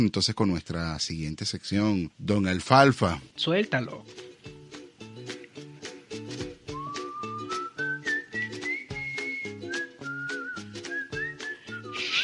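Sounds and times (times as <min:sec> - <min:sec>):
speech: 0:00.0 - 0:04.3
bouncy rhythmic instrumental backing: 0:03.2 - 0:12.2
cheerful whistled melody: 0:06.6 - 0:12.2.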